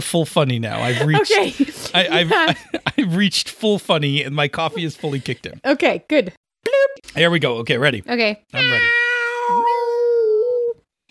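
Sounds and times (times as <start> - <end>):
speech: 0.0 - 9.8
laughter: 0.6 - 5.7
cat yowling: 8.6 - 10.4.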